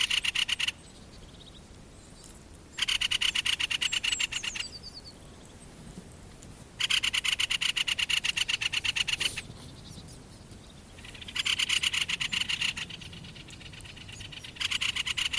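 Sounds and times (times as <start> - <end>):
great spotted woodpecker rattling chatter call: 0.0 - 1.6, 2.7 - 5.1, 6.8 - 10.1, 10.9 - 15.3.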